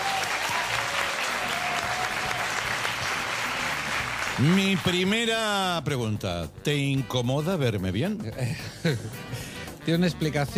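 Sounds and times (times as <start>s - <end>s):
audience clapping: 0.0s - 5.6s
speech: 4.4s - 10.5s.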